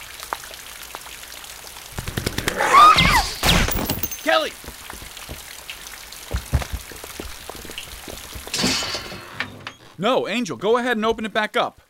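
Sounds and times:
raindrops tapping against a surface: 0.0 - 2.5, 3.9 - 8.6
rain pattering outside: 0.0 - 2.9, 3.7 - 8.6, 9.7 - 11.8
speech: 4.2 - 4.6, 10.0 - 11.8.

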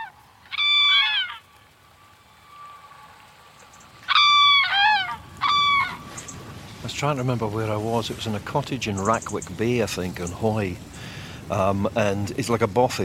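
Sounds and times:
cranes trumpeting: 0.0 - 8.1
steady hiss: 0.0 - 13.0
speech: 7.0 - 10.9, 11.5 - 13.0.

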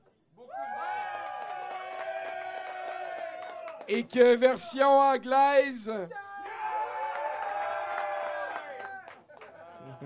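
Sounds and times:
audience cheering and whooping: 0.4 - 3.9, 6.1 - 10.0
audience applauding: 0.5 - 4.4, 6.4 - 10.0
speech: 3.9 - 6.2.

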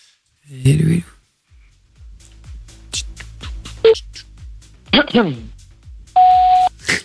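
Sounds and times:
speech: 0.5 - 1.1, 5.2 - 5.6
answering machine long steady beep: 6.2 - 6.7.

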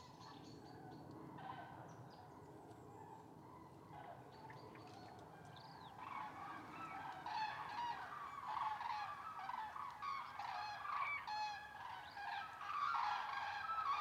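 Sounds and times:
wild flock of common cranes trumpeting at migration stopover in eastern France: 6.0 - 13.9.

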